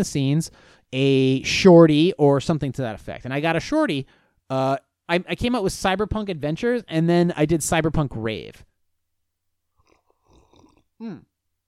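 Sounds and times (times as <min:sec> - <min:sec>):
speech: 0:00.0 - 0:08.7, 0:11.0 - 0:11.3
slurping hot coffee: 0:09.7 - 0:11.2.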